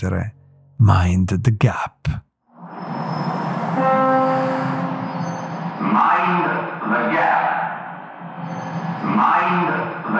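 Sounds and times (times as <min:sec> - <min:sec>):
speech: 0:00.0 - 0:02.2
high metallic whine and tonal screech of passing train: 0:02.6 - 0:06.2, 0:08.4 - 0:09.4
train rumbling through a London Underground station: 0:02.8 - 0:10.1.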